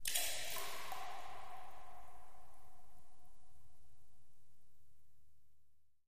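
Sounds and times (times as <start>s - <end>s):
echoey water drips in a cave: 0.0s - 4.8s.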